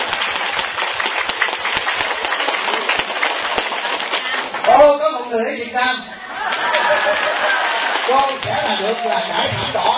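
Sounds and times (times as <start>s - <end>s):
applause from a seated audience of community members at a Vietnamese gathering in Southern California: 0.0s - 4.9s, 6.4s - 9.9s
speech: 5.7s - 6.1s, 8.1s - 9.9s
laughter: 6.1s - 9.9s.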